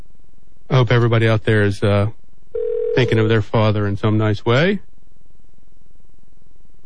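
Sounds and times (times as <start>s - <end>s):
speech: 0.9s - 2.2s, 2.9s - 4.9s
telephone dial tone: 2.5s - 3.1s.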